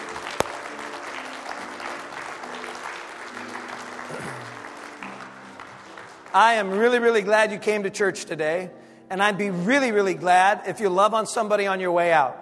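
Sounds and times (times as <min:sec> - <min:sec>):
large crowd clapping: 0:00.0 - 0:07.5
speech: 0:06.3 - 0:12.4.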